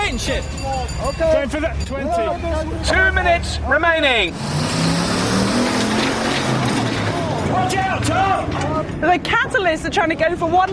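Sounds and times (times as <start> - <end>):
speech: 0.1 - 4.9, 7.6 - 10.7
motor engine revving during a timed lifting contest: 3.0 - 8.0.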